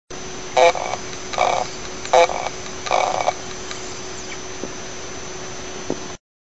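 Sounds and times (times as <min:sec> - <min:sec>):
damaged hard drive motor heads sounds: 0:00.6 - 0:04.5.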